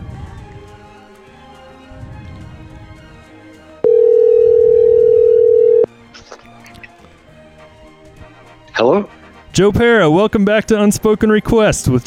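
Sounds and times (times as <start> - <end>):
electronic phone ringing tone: 3.8 - 5.9
speech: 8.8 - 12.0.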